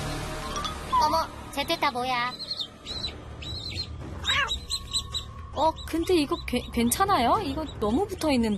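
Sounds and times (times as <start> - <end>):
speech: 1.1 - 2.5, 5.6 - 8.5
newly hatched baby chicks peeping: 2.2 - 8.5.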